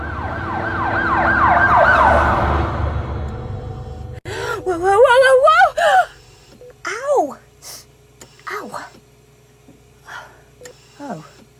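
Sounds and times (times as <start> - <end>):
ambulance siren: 0.0 - 3.8
road traffic rumble: 0.0 - 5.1.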